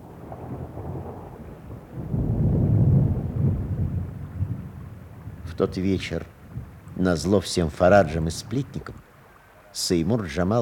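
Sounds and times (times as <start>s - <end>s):
deep rumbling thunder: 0.0s - 7.3s
heavy rain: 0.0s - 10.6s
speech: 5.6s - 6.4s, 7.0s - 9.0s, 9.7s - 10.6s.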